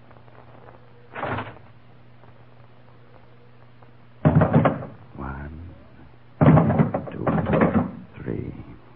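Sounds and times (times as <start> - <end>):
low steady hum: 0.0 - 8.9
door creaking and banging open: 1.1 - 1.6, 4.2 - 5.0, 6.4 - 8.1.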